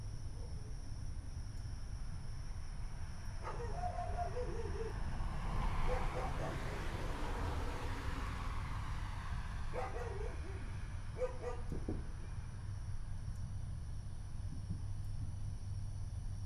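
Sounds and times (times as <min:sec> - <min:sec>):
faint high insect whine: 0:00.0 - 0:16.4
low rumble of traffic: 0:00.0 - 0:16.4
dog barking: 0:03.4 - 0:05.0, 0:05.8 - 0:06.8, 0:09.7 - 0:11.7.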